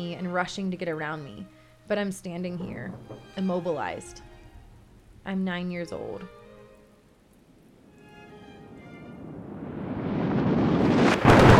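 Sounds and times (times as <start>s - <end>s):
speech: 0.0s - 4.3s, 5.2s - 6.4s
sharper clatter of hail: 2.6s - 3.6s
heavy rain and hail pounding a hiking trail near a mountain peak: 7.4s - 11.5s.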